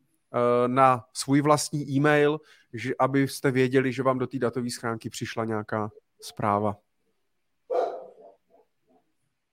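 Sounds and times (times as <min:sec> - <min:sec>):
speech: 0:00.3 - 0:06.8
dog yipping: 0:07.7 - 0:08.6
dog barking: 0:07.7 - 0:09.0.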